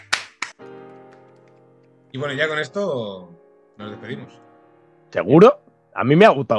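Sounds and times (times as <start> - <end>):
hand claps: 0.0 - 1.6
speech: 2.1 - 4.5, 5.1 - 6.5.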